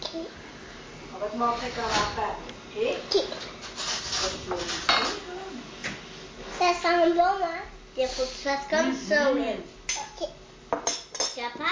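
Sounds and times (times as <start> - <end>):
speech: 1.2 - 3.6, 4.2 - 5.8, 6.6 - 11.7
dishes clattering and scraping as a plate is fetched during a meal: 3.2 - 5.2, 9.9 - 11.4
crockery and cutlery clinking: 10.8 - 11.4.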